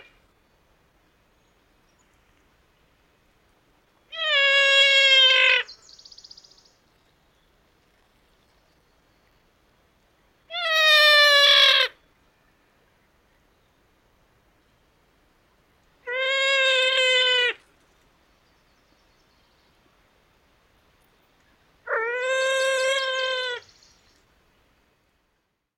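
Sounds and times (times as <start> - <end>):
female ruffed grouse squealing: 4.1 - 5.7, 10.5 - 11.9, 16.1 - 17.6, 21.9 - 23.7.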